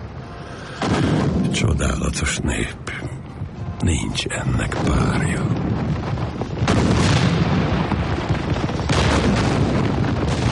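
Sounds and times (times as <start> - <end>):
speech: 0.7 - 3.2, 3.8 - 5.7
heavy cannon shots: 0.8 - 2.1, 4.7 - 10.5.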